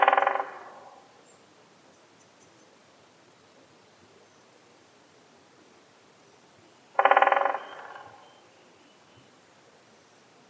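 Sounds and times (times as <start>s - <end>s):
Great spotted woodpecker drumming: 0.0s - 1.0s, 6.9s - 8.2s.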